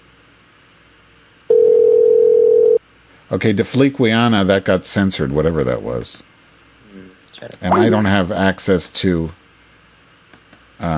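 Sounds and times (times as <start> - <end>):
telephone dial tone: 1.5 - 2.8
speech: 3.3 - 6.3, 7.4 - 9.4, 10.8 - 10.9.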